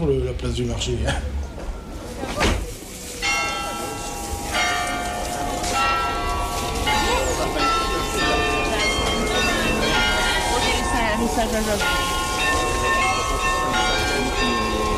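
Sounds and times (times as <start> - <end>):
speech: 0.0 - 1.4, 11.4 - 12.2
carillon bells ringing from a belfry: 3.2 - 14.9.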